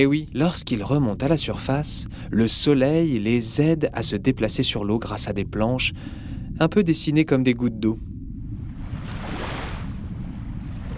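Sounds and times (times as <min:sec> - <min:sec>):
speech: 0:00.0 - 0:08.2
ocean surf with deep rumbling low end: 0:08.6 - 0:10.9.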